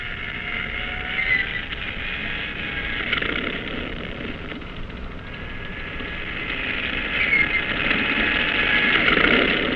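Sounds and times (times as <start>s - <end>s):
propeller plane engine on a cruiser's catapult droning with high whine: 0.0s - 9.7s.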